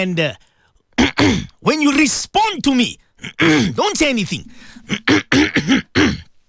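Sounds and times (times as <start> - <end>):
speech: 0.0 - 0.5, 1.1 - 6.0
throat clearing and coughing: 1.0 - 1.6, 3.2 - 3.8, 4.7 - 6.3.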